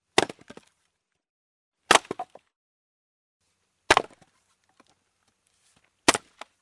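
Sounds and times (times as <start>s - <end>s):
firewood being split and chopped: 0.1s - 0.7s, 1.9s - 2.4s, 3.9s - 4.9s, 6.0s - 6.6s.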